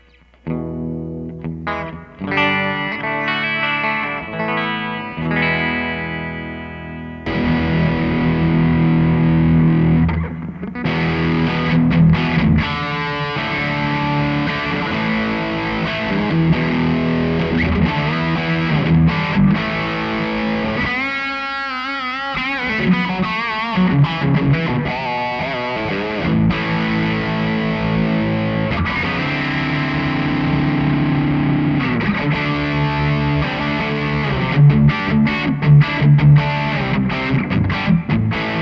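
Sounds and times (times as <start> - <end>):
electric guitar through overdrive pedal with crunchy Marshall-style tone: 0.0 - 38.6.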